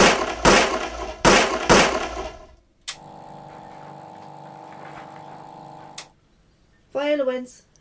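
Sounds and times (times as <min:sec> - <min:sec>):
gunshots fired at a target at a gun range: 0:00.0 - 0:02.6
steady droning hum: 0:00.0 - 0:06.1
speech: 0:07.2 - 0:07.7.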